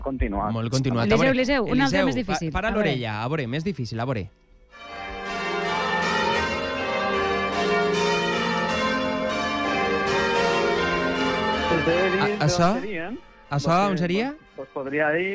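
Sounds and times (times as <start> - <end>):
speech: 0.0 - 4.9, 11.7 - 15.3
English church bells ringing changes in a peal: 4.7 - 15.3.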